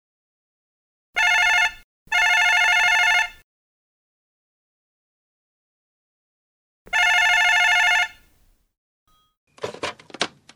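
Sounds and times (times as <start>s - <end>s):
telephone ringing with a bright buzzing electronic tone: 1.2s - 3.4s, 6.9s - 8.3s.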